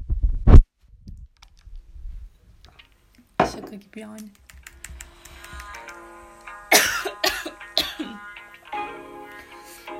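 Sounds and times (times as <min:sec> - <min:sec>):
speech: 0:03.5 - 0:04.4
harsh raspy coughs: 0:06.7 - 0:08.2.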